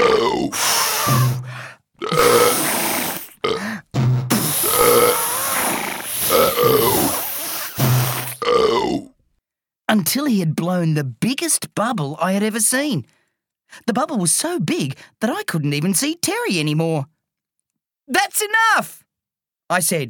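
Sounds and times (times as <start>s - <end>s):
loud croaky burps: 0.0s - 9.2s
speech: 9.9s - 17.1s, 18.1s - 19.0s, 19.7s - 20.0s.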